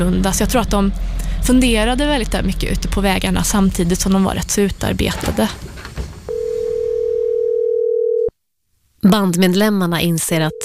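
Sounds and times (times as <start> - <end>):
speech: 0.0 - 5.7, 9.0 - 10.6
telephone dial tone of an outgoing call: 6.3 - 8.3.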